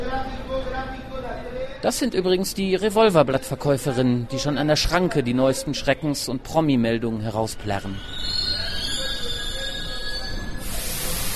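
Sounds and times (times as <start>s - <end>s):
speech: 0.0s - 8.5s
rubber-tyred metro train squealing through the underground: 7.3s - 11.3s
broad hiss of rushing noise: 10.5s - 11.3s.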